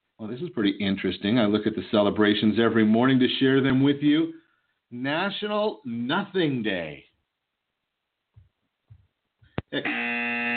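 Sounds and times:
speech: 0:00.2 - 0:07.1, 0:09.7 - 0:10.1
soft dull thumps: 0:08.3 - 0:09.7
loud harsh electric buzzer: 0:09.7 - 0:10.5.

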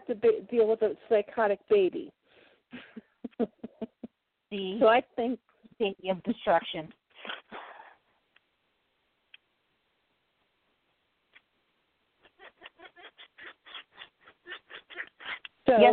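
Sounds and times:
speech: 0:00.1 - 0:03.7, 0:04.5 - 0:07.4, 0:15.7 - 0:15.9
pet bird making laughing-like chuckling calls: 0:12.2 - 0:15.6.

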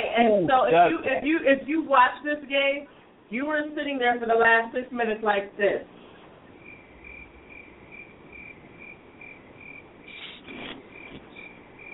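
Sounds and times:
speech: 0:00.2 - 0:06.0
crickets chirping at night: 0:06.4 - 0:11.9.

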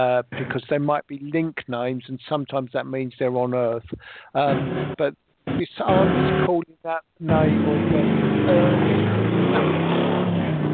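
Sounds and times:
speech: 0:00.0 - 0:10.0
motorbike engine driving past: 0:07.3 - 0:10.7.

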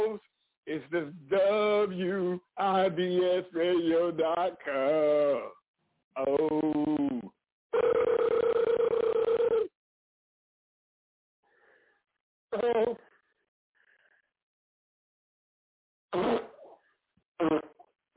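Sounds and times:
speech: 0:00.1 - 0:05.6, 0:06.2 - 0:09.1, 0:12.5 - 0:13.1
fart noises over a tinny narrow-band phone line: 0:06.2 - 0:09.7, 0:16.1 - 0:16.8, 0:17.4 - 0:17.9.

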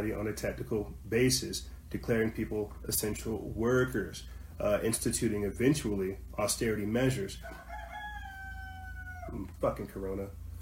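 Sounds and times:
speech: 0:00.0 - 0:07.6, 0:09.3 - 0:10.4
rooster crowing: 0:07.4 - 0:09.5.

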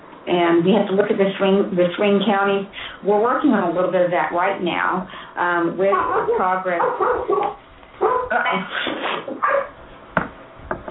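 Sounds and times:
speech: 0:00.3 - 0:09.7
dog barking and yipping: 0:05.9 - 0:08.3, 0:09.4 - 0:09.8.

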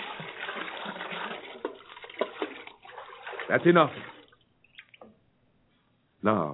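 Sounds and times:
water poured from buckets over a sacrifice on an altar: 0:00.0 - 0:05.1
speech: 0:03.5 - 0:04.1, 0:06.2 - 0:06.5.

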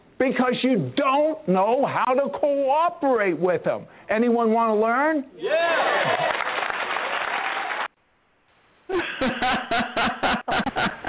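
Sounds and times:
speech: 0:00.2 - 0:06.3, 0:08.9 - 0:10.9
whooping shouts: 0:05.4 - 0:06.4
audience crowd clapping: 0:05.8 - 0:08.0.

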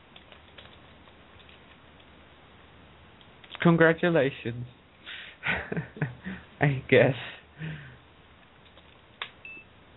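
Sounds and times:
speech: 0:03.6 - 0:04.8, 0:06.6 - 0:07.9
short high electronic low battery beeps from a phone: 0:09.4 - 0:09.7.

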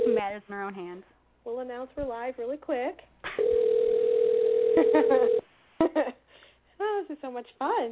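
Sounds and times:
speech: 0:00.4 - 0:03.7, 0:04.8 - 0:06.2, 0:06.8 - 0:07.9
telephone dial tone while dialing out: 0:03.4 - 0:05.4.

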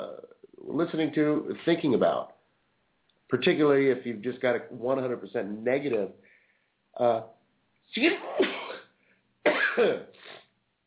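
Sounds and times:
speech: 0:00.8 - 0:02.4, 0:03.3 - 0:06.2, 0:07.0 - 0:08.4, 0:09.8 - 0:10.3
person sneezing: 0:08.1 - 0:08.9, 0:09.5 - 0:10.5.

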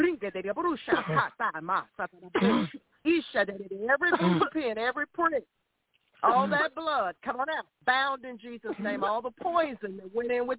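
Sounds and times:
speech: 0:00.0 - 0:05.6, 0:06.2 - 0:10.5
coughing and throat clearing: 0:00.9 - 0:01.4, 0:02.3 - 0:02.9, 0:04.1 - 0:04.6.

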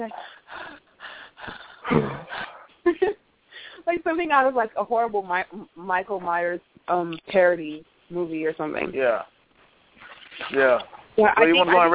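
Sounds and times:
speech: 0:00.0 - 0:00.3, 0:01.9 - 0:02.2, 0:04.2 - 0:09.4, 0:10.5 - 0:11.9
person imitating a phone caller's heavy raspy breathing: 0:01.4 - 0:02.7.

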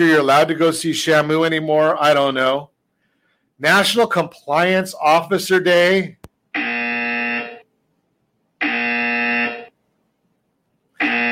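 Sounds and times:
speech: 0:00.0 - 0:02.7, 0:03.6 - 0:06.7
game show buzzer: 0:06.6 - 0:07.7, 0:08.6 - 0:09.7, 0:11.0 - 0:11.3.

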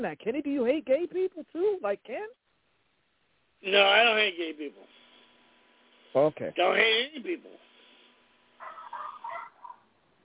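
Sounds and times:
speech: 0:00.0 - 0:02.4, 0:03.6 - 0:05.0, 0:06.1 - 0:07.7
dog barking: 0:08.6 - 0:09.8.

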